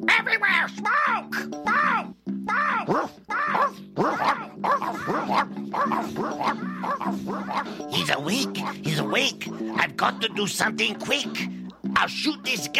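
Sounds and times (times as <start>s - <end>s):
speech: 0.0s - 1.6s, 8.0s - 12.7s
dog barking and whining: 2.5s - 9.9s.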